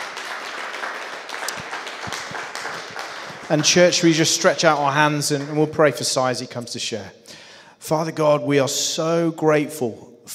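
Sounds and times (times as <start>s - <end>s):
crowd applauding: 0.0s - 6.2s
speech: 3.5s - 7.3s, 7.9s - 10.3s.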